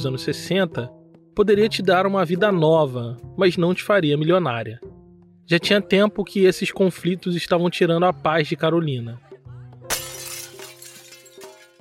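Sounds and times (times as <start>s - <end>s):
speech: 0.0s - 4.9s, 5.5s - 9.3s
falling glass shards tinkling: 9.9s - 11.7s
window pane of a house shattering: 9.9s - 11.7s.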